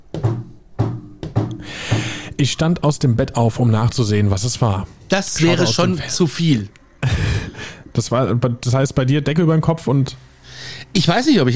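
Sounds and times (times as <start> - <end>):
slow steady dull knocking: 0.0 - 2.3
speech: 2.4 - 6.8, 8.0 - 11.5
laughter: 5.4 - 6.0.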